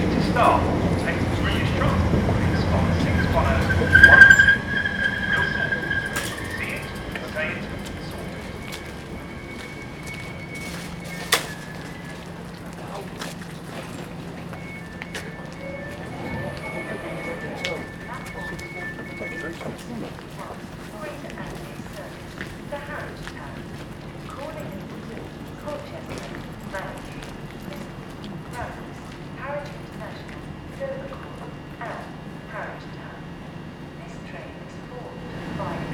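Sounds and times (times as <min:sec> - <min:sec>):
commuters' voices on a cold damp train station platform: 0:00.0 - 0:35.9.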